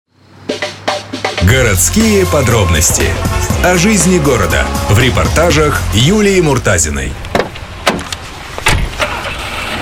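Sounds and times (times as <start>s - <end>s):
car driving road rumble: 1.4s - 9.8s
speech: 1.5s - 7.3s
car knocks and bumps: 7.3s - 9.1s.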